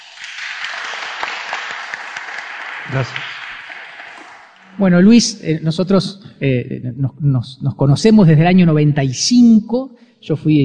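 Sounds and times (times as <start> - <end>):
concert audience applause welcoming a composer: 0.0 - 4.4
speech: 2.9 - 3.3, 4.8 - 10.6.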